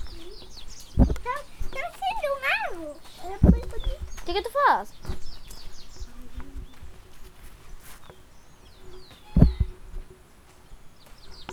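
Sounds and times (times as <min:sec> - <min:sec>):
dull thump: 0:00.0 - 0:08.1, 0:09.0 - 0:10.1
small birds chirping: 0:00.0 - 0:11.5
speech: 0:04.3 - 0:05.0.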